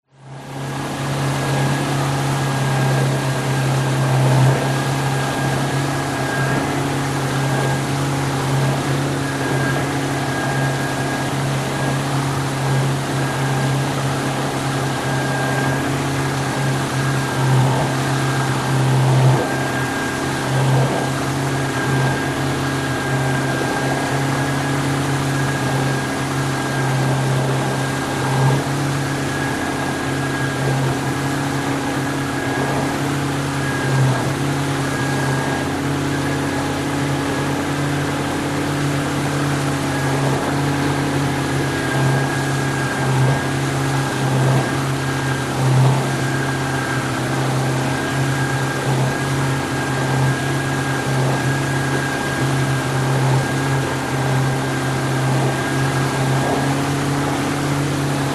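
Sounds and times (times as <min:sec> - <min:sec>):
16 ft fiberglass outboard motorboat driving fast: 0:00.1 - 0:58.3.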